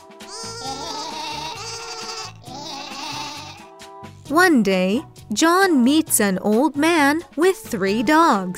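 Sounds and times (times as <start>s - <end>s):
sheep bleating in long quavering buzzy calls: 0.3s - 3.7s
speech: 4.3s - 8.5s.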